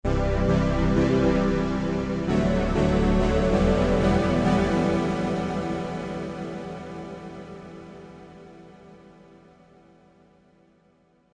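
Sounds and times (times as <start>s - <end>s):
ambient keyboard: 0.0s - 10.4s.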